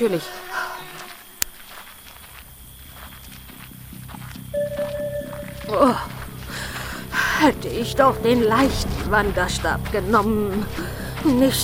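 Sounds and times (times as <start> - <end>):
speech: 0.0 - 0.6, 5.7 - 6.2, 7.4 - 11.6
hoofbeats of approaching horses: 0.8 - 11.6
sustained high tone: 4.6 - 8.6.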